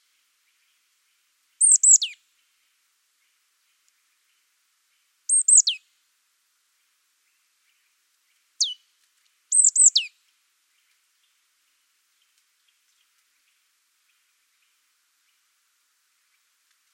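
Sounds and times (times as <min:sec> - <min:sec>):
marsh tit Poecile palustris calls of high sharp downslurred notes: 0:01.6 - 0:02.1, 0:09.6 - 0:10.0.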